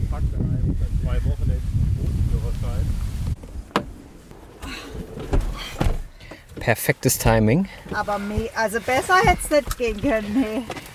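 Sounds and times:
strong wind gusting outdoors: 0:00.0 - 0:06.2
speech: 0:06.6 - 0:10.8.

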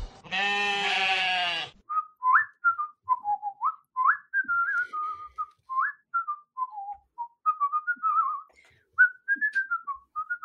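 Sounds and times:
harsh bleating cries: 0:00.1 - 0:01.8
person whistling a lively tune: 0:01.9 - 0:10.4.

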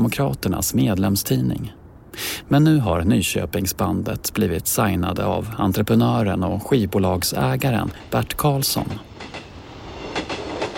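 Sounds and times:
speech: 0:00.1 - 0:09.4
train to Stockholm rumbling along the rails: 0:07.4 - 0:10.7.

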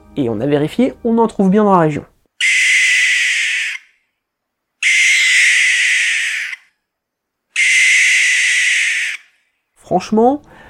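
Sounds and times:
speech: 0:00.2 - 0:02.1, 0:09.9 - 0:10.6
barn owl hissing screech calls: 0:01.9 - 0:04.0, 0:04.8 - 0:06.8, 0:07.5 - 0:09.4.

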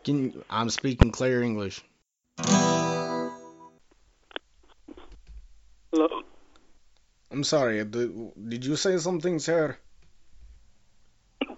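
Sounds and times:
speech: 0:00.0 - 0:02.7, 0:06.0 - 0:06.3, 0:07.3 - 0:09.8
man hiccuping: 0:05.9 - 0:06.4, 0:11.4 - 0:11.5.

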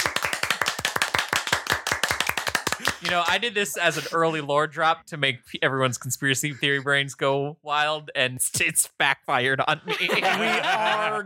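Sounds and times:
hands clapping: 0:00.0 - 0:04.1
laughter: 0:02.7 - 0:04.2, 0:06.3 - 0:07.0, 0:09.7 - 0:11.2
speech: 0:03.0 - 0:11.2.

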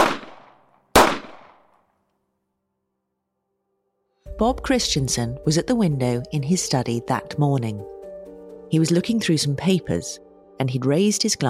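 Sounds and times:
9mm pistol being fired: 0:00.0 - 0:01.7
speech: 0:04.4 - 0:08.0, 0:08.7 - 0:11.4.

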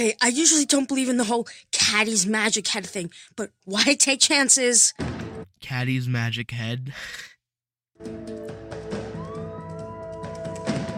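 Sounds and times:
speech: 0:00.0 - 0:07.4, 0:08.0 - 0:08.4
police car sirens wailing: 0:09.0 - 0:10.9.

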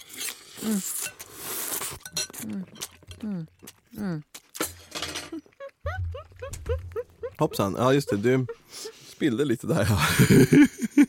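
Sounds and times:
slurping ramen noodles: 0:00.0 - 0:02.7
speech: 0:00.6 - 0:01.0, 0:02.4 - 0:04.3, 0:07.4 - 0:08.6, 0:09.2 - 0:11.0
laughter: 0:05.6 - 0:11.0.

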